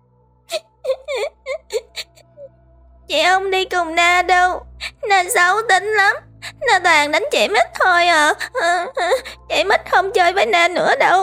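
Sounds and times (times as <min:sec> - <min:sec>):
young child crying inside a temple: 0:00.5 - 0:02.2, 0:04.1 - 0:11.2
speech: 0:03.1 - 0:11.2.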